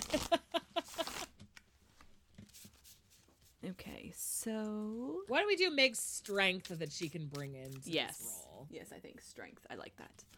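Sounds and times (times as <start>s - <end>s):
deck of cards being shuffled: 0.0s - 3.6s, 6.1s - 8.4s
speech: 3.7s - 10.3s.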